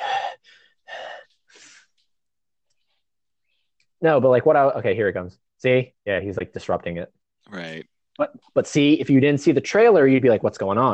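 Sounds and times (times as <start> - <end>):
heavy labored rasping breathing in a film scene: 0.0 - 2.0
speech: 4.0 - 10.9.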